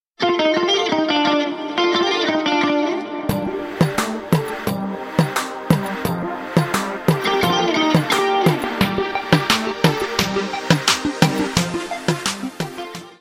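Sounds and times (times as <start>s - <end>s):
arabic tune: 0.2s - 13.1s.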